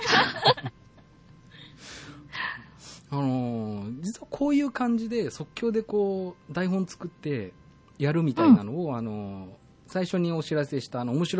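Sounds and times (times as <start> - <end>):
laughter: 0.0 - 0.7
heavy breathing: 1.5 - 3.1
speech: 3.1 - 3.5, 4.3 - 11.3.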